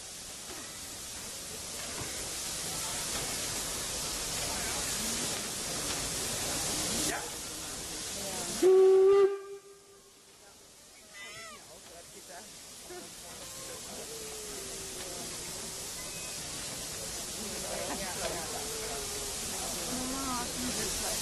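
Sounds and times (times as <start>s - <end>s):
steam locomotive hissing steam at a track end: 0.0s - 21.1s
steam locomotive whistle blast: 8.6s - 10.2s.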